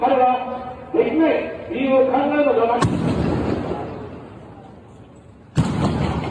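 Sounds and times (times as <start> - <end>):
man speaking through amplification at an election rally in Nara Japan: 0.0 - 3.0
booming gunshots at an election rally in Nara Japan: 2.8 - 4.1, 5.5 - 6.2.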